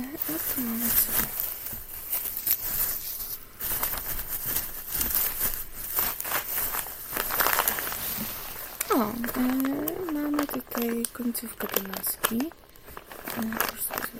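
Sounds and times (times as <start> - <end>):
plastic foil packaging tearing as items are pulled open: 0.0 - 14.1
thin plastic foil packaging crinkling and rustling as wrapped items are handled: 0.0 - 14.1
speech: 0.2 - 1.2, 9.3 - 9.6, 11.2 - 12.6, 13.4 - 14.1.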